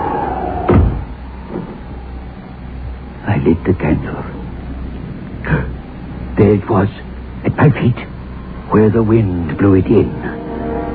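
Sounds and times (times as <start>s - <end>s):
steady hiss: 0.0s - 10.9s
door shutting with a thud: 0.6s - 1.8s
speech: 3.4s - 4.3s, 6.4s - 8.1s, 8.7s - 10.3s.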